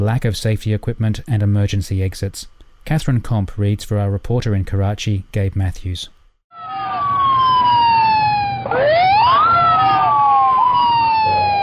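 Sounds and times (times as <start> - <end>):
speech: 0.0 - 6.2
ambulance siren wailing outside a garment factory in Karachi: 6.5 - 11.6.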